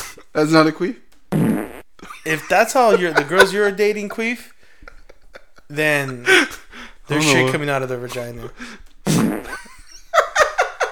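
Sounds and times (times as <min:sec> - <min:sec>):
speech: 0:00.4 - 0:01.0, 0:02.3 - 0:04.5, 0:05.7 - 0:08.8
loud sputtering buzzy fart: 0:01.3 - 0:01.9, 0:09.0 - 0:09.8
short rhythmic bursts of laughter: 0:02.0 - 0:08.8, 0:09.4 - 0:10.9.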